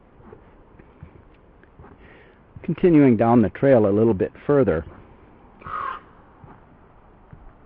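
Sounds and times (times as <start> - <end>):
speech: 2.6 - 5.0
raven croaking call: 4.8 - 7.5.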